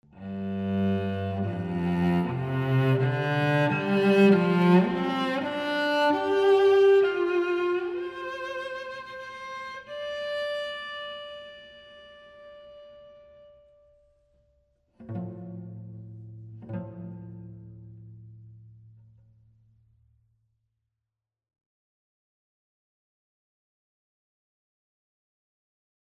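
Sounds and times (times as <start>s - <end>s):
cello on a scoring stage: 0.0s - 19.4s.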